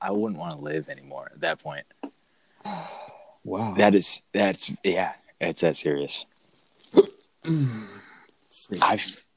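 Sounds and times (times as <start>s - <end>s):
speech: 0.0s - 2.0s, 2.6s - 6.3s, 6.9s - 8.1s, 8.7s - 9.2s
drawn-out falling voiced groan or sigh: 2.7s - 4.1s, 7.0s - 9.1s
person hiccuping: 6.9s - 8.0s.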